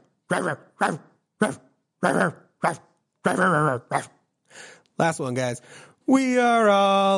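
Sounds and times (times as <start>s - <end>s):
person imitating dog barks: 0.0s - 4.2s
speech: 0.3s - 7.1s.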